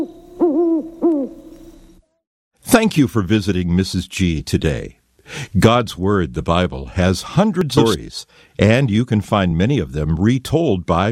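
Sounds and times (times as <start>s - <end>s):
great owl hooting: 0.0s - 1.9s
speech: 2.8s - 11.1s.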